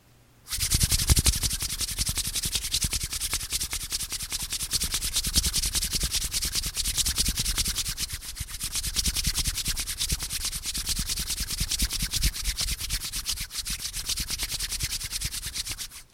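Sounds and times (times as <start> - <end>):
hands rubbing together: 0.5 - 16.1.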